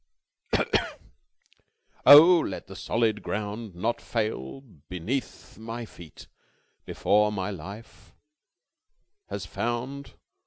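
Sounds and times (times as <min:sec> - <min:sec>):
man clearing his throat: 0:00.5 - 0:01.1
speech: 0:02.0 - 0:06.3, 0:06.9 - 0:08.1, 0:09.3 - 0:10.2.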